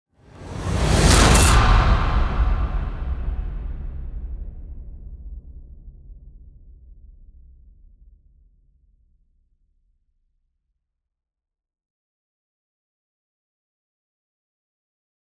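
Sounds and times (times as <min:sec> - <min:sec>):
short analog rise to metal hit: 0:00.4 - 0:04.0.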